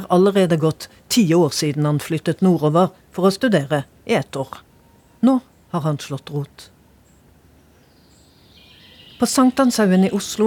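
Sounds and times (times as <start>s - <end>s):
faint birdsong outdoors in a city park: 0.0s - 10.4s
steady outdoor hum: 0.0s - 10.4s
speech: 0.1s - 6.7s, 9.2s - 10.4s.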